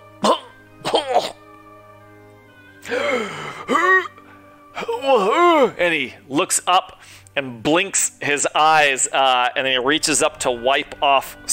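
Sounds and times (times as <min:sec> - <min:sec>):
old man coughing: 0:00.2 - 0:01.4, 0:03.6 - 0:04.2
speech: 0:05.1 - 0:11.5.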